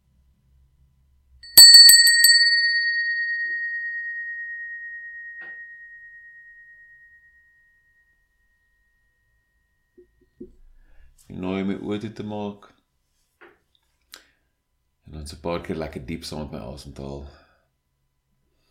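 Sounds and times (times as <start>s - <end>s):
small bell ringing: 1.4s - 8.1s
speech: 11.3s - 12.8s, 15.2s - 17.4s.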